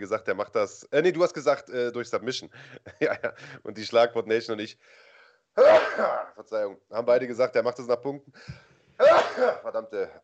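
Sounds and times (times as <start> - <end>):
speech: 0.0 - 5.0, 5.6 - 10.2
laughter: 2.5 - 3.7
person sneezing: 5.6 - 6.4, 9.0 - 9.7.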